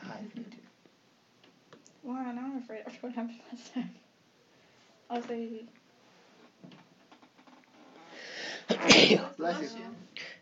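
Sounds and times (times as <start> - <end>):
speech: 2.1 - 4.1, 5.1 - 5.8, 8.8 - 10.3
person sneezing: 8.6 - 9.3.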